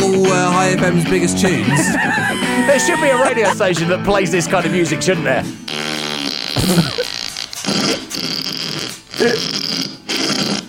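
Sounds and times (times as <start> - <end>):
speech: 0.7 - 6.0, 6.6 - 7.2, 9.2 - 9.7
laughter: 1.6 - 4.3
buzzy sputtering fart noises from a fart pedal: 5.6 - 10.6.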